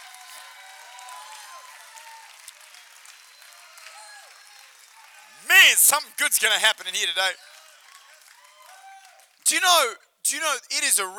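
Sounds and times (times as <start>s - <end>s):
church congregation applauding during a worship service: 0.0s - 11.1s
church congregation shouting praise during a worship service: 5.4s - 11.1s
speech: 5.6s - 7.5s, 9.5s - 11.1s.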